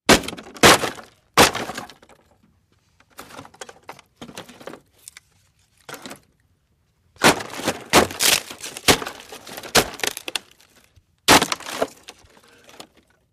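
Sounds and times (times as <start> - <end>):
wooden box being bashed: 0.0 - 2.1, 7.2 - 10.5, 11.2 - 12.2.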